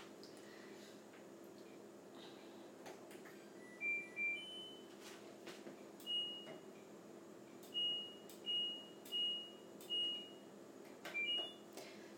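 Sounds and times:
washer dryer short electronic beeps: 0:03.6 - 0:04.9, 0:06.0 - 0:06.5, 0:07.7 - 0:10.4, 0:11.1 - 0:11.6.

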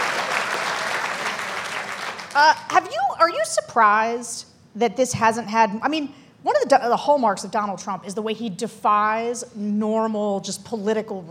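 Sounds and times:
audience applause: 0:00.0 - 0:02.4
speech: 0:02.4 - 0:11.2.

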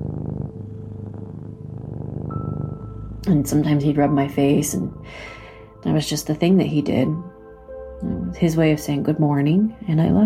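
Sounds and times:
cat purring loudly: 0:00.0 - 0:05.0
speech: 0:03.2 - 0:07.3, 0:08.0 - 0:10.2.

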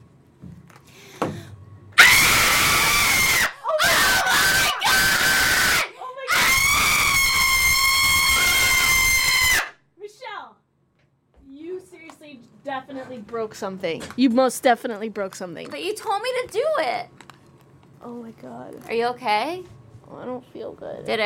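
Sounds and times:
person screaming into a microphone: 0:02.0 - 0:09.7
speech: 0:13.3 - 0:17.2, 0:18.0 - 0:21.2.

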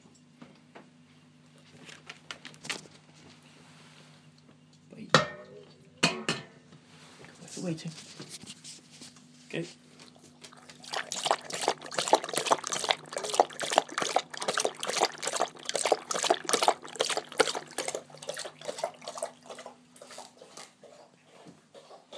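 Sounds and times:
faint low hum: 0:00.0 - 0:22.1
speech: 0:07.6 - 0:08.4, 0:09.6 - 0:09.8
dog lapping water: 0:10.0 - 0:22.1.

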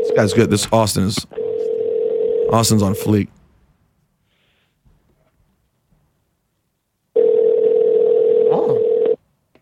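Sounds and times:
speech: 0:00.2 - 0:01.4, 0:02.5 - 0:03.4
electronic ringback tone of an outgoing phone call: 0:01.4 - 0:02.6, 0:07.2 - 0:09.2.

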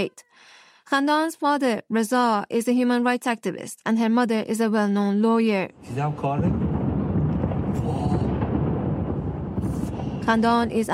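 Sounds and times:
speech: 0:00.0 - 0:06.6, 0:10.3 - 0:10.9
explosions rumbling: 0:05.7 - 0:10.9.

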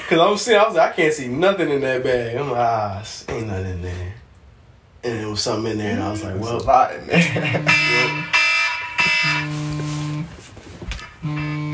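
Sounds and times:
speech: 0:00.1 - 0:04.2, 0:05.0 - 0:08.3, 0:09.1 - 0:09.9
laughter: 0:07.0 - 0:08.3
loud electronic alarm blaring in on-off pulses: 0:07.4 - 0:10.3, 0:11.0 - 0:11.7.

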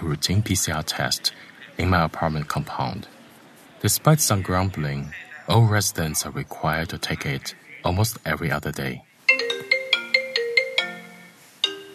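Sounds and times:
speech: 0:00.1 - 0:03.2, 0:03.8 - 0:09.1
phone ringtone: 0:09.3 - 0:11.9.

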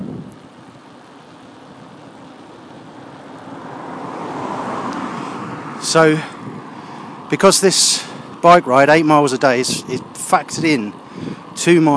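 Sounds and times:
wind noise: 0:00.0 - 0:00.9, 0:03.8 - 0:11.9
car engine and tyre roar approaching along a road: 0:00.0 - 0:11.9
speech: 0:05.9 - 0:06.3, 0:07.3 - 0:11.9.

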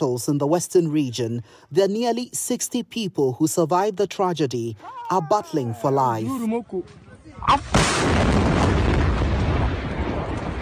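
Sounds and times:
speech: 0:00.0 - 0:09.0
massive explosion with a sharp crack and thunderous blast: 0:07.6 - 0:10.6.

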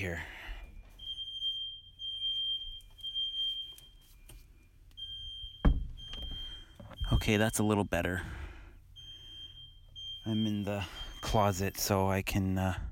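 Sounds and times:
speech: 0:00.0 - 0:00.4, 0:07.2 - 0:08.4, 0:10.3 - 0:12.8
smoke alarm outside a bedroom door sounding a high-pitched tone: 0:00.0 - 0:08.1, 0:08.8 - 0:12.0
dull thump: 0:05.6 - 0:06.4.

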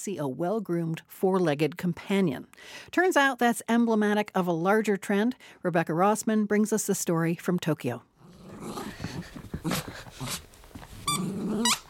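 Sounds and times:
speech: 0:00.0 - 0:09.0, 0:09.6 - 0:10.4
gray and white bearded Shih Tzu growling while playing in Tokyo: 0:08.2 - 0:11.8
rubber squeaky toy squeaking: 0:11.0 - 0:11.8.

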